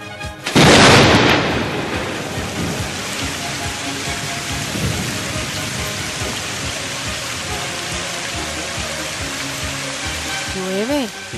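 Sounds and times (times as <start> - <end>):
heavy rain in a thunderstorm: 0.4 - 11.3
loud crack of rolling thunder: 0.5 - 7.3.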